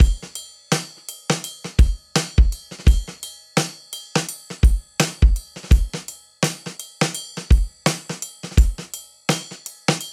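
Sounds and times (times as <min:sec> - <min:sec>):
live trip hop acoustic drum loop: 0:00.0 - 0:10.1.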